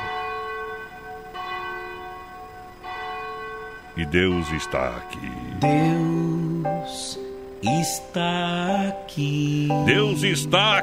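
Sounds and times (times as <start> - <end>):
large cathedral church bell ringing: 0.0 - 7.9
speech: 4.0 - 10.8.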